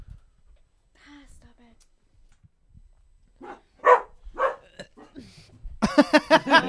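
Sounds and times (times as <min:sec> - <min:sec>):
person burping after sipping beer: 0:04.6 - 0:05.2
laughter: 0:05.8 - 0:06.6.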